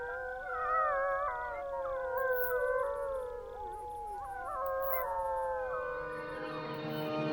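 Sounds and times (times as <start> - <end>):
several wolves howling in chorus: 0.0 - 7.2.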